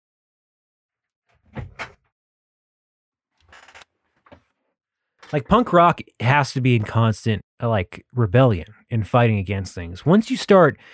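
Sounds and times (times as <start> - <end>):
door scraping and rattling as it swings: 1.4 - 2.0
door thudding shut: 1.5 - 2.0
speech: 5.3 - 10.9.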